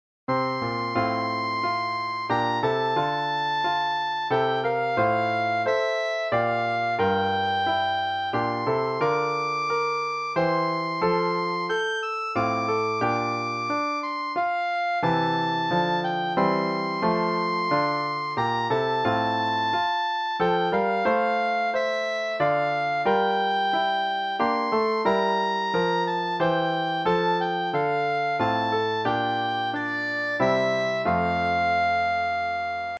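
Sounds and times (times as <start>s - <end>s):
clarinet playing descant: 0.4s - 32.9s.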